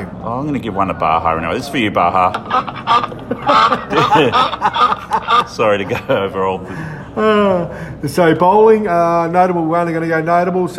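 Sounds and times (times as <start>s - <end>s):
speech: 0.2s - 10.7s
duck quack sound effect: 2.3s - 5.7s
laughter: 2.3s - 6.6s.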